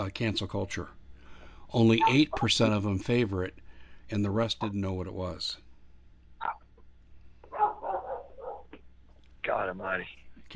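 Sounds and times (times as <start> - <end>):
speech: 0.0 - 1.0, 1.7 - 5.6, 9.5 - 10.5
dog barking: 7.5 - 8.8.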